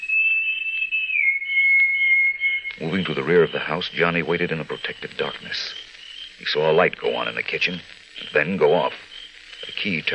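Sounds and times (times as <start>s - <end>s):
answering whistle: 0.0s - 4.0s
speech: 2.8s - 5.8s, 6.4s - 9.1s, 9.7s - 10.1s.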